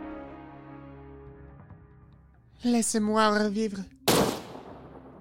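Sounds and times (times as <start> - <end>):
speech: 2.7 - 3.9
revolver gunshot: 4.1 - 5.1.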